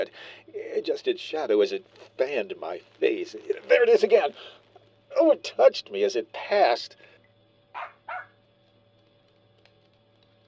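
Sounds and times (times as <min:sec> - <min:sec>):
speech: 0:00.0 - 0:04.6, 0:05.2 - 0:07.1
faint low hum: 0:00.0 - 0:10.4
dog barking: 0:07.7 - 0:08.4.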